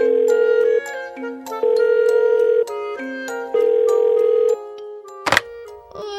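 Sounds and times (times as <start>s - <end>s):
phone ringing with repeating electronic melody: 0.0s - 0.9s, 1.6s - 2.7s, 3.6s - 4.6s
sharp click of phone picked up: 5.3s - 5.5s.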